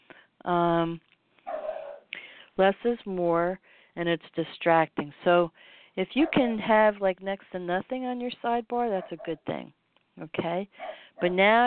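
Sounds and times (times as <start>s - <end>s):
speech: 0.4s - 1.1s, 2.6s - 11.6s
dog barking: 1.5s - 2.1s, 9.0s - 9.3s, 10.8s - 11.1s.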